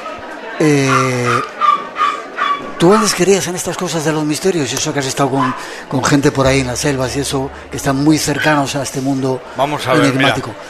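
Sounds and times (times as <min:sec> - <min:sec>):
speech: 0:00.6 - 0:01.5, 0:02.8 - 0:10.6
dog whining: 0:00.8 - 0:02.6.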